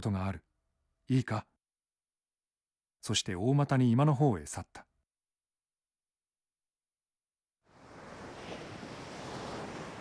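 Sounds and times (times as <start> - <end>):
speech: 0.0 - 0.5, 1.1 - 1.5, 3.0 - 4.9
surf: 7.7 - 9.9
warm wind rushing in off the sea: 7.8 - 9.9.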